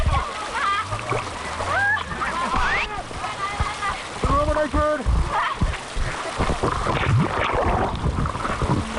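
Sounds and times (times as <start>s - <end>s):
water crashing and splashing in rough rapids: 0.0s - 8.9s
people shouting and screaming: 1.6s - 2.9s.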